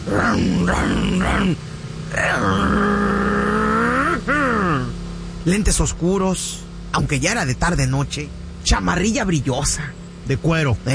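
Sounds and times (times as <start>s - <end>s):
voice mimicking a motorcycle engine revving: 0.0s - 5.8s
speech: 0.1s - 3.2s, 5.4s - 10.9s.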